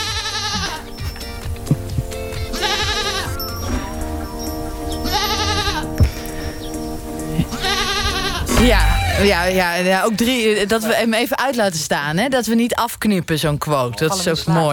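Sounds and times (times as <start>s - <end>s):
baby goat bleating: 0.0s - 0.9s, 2.3s - 3.7s, 5.0s - 6.0s, 7.4s - 9.2s
steady tonal background: 0.6s - 11.0s
speech: 8.6s - 14.7s.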